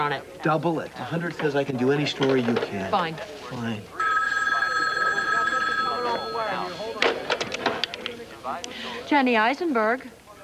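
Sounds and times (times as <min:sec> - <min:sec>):
speech: 0:00.0 - 0:04.0, 0:08.5 - 0:10.2
telephone ringing with bright electronic trill: 0:03.9 - 0:07.6.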